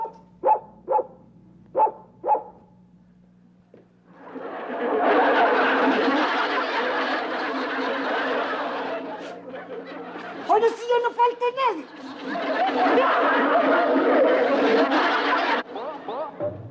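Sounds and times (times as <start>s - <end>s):
dog barking: 0.0s - 2.7s
group laughter: 4.1s - 16.6s.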